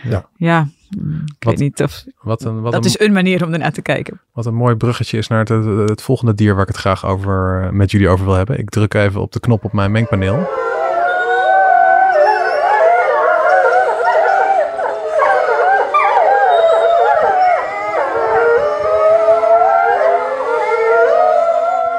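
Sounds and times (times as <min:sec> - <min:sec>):
speech: 0:00.0 - 0:10.7
chorus of wolves howling: 0:09.6 - 0:21.9.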